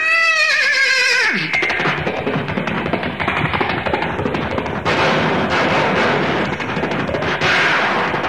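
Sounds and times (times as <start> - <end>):
person vocally imitating a horse whinny through a microphone: 0.0 - 1.8
person vocally imitating galloping hooves through a microphone: 0.4 - 8.2.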